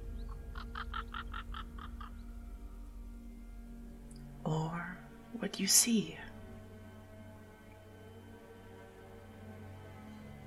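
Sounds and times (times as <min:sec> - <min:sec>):
short bird calls: 0:00.0 - 0:02.4
steady low hum: 0:00.0 - 0:08.0
speech: 0:04.5 - 0:06.3.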